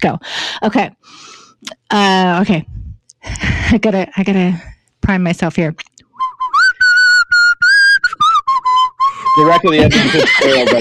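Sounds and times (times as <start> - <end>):
speech: 0.0 - 5.9, 9.4 - 10.8
person whistling a 1976 song melody: 6.2 - 9.8
laughter: 9.2 - 10.8.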